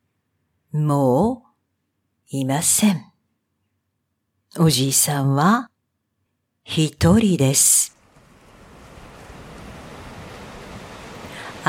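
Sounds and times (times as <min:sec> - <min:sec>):
speech: 0:00.7 - 0:01.4, 0:02.3 - 0:03.1, 0:04.5 - 0:05.7, 0:06.6 - 0:08.0
ocean waves washing in beneath a house over the sea: 0:07.9 - 0:11.6
wind noise: 0:08.1 - 0:11.6.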